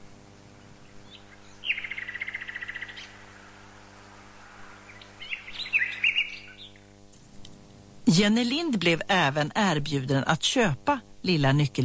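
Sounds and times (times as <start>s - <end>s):
nightingale singing in bright trilled chirps and whistled notes: 0.6s - 3.5s, 4.7s - 7.0s
speech: 8.1s - 11.8s.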